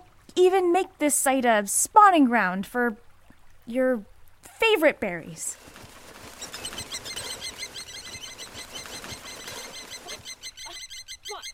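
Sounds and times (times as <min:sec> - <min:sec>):
speech: 0:00.3 - 0:03.1, 0:03.7 - 0:05.8
busy flock of small birds chirping: 0:05.5 - 0:11.5
soft tapping of birds pecking: 0:05.6 - 0:10.4.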